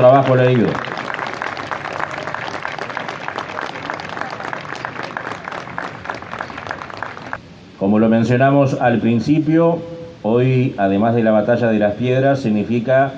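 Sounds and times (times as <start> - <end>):
speech: 0.0 - 1.1, 7.8 - 13.1
audience applause at an official commemorative ceremony in Durazno: 0.0 - 7.4.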